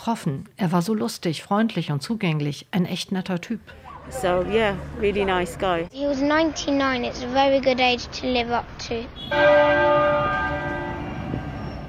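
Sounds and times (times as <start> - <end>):
speech: 0.0 - 10.4
church bell at Westminster Abbey tolling: 9.3 - 11.8.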